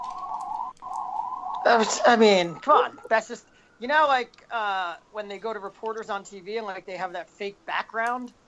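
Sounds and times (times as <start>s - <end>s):
police siren wailing outside: 0.0s - 3.2s
speech: 1.7s - 8.4s.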